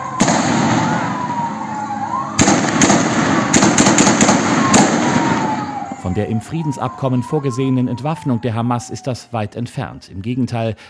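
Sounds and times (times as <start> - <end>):
noisy outdoor background at a market: 0.0 - 10.8
gunshots fired by armed men at a market: 0.1 - 1.4, 2.4 - 5.7
speech: 6.1 - 10.8.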